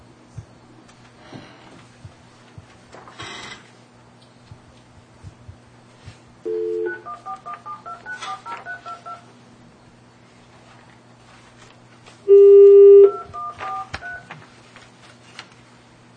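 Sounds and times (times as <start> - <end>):
cell phone keypad dialing tones: 6.5 - 9.2, 12.3 - 14.3
long cell phone beep: 6.5 - 9.2, 12.3 - 14.3.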